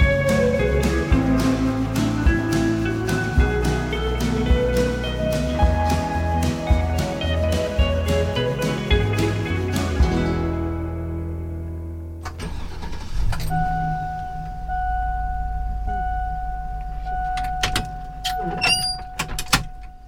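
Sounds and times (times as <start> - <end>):
school bus engine cranking and idling: 0.0 - 20.0
school bus door mechanism opening with clunks and hiss: 12.2 - 14.7, 16.8 - 20.0
steady warning tone: 13.4 - 20.0.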